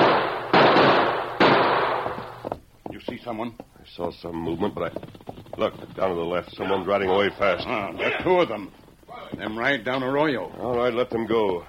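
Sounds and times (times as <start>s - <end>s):
rifle gunshots from an arroyo: 0.0s - 2.4s
speech: 3.0s - 11.6s.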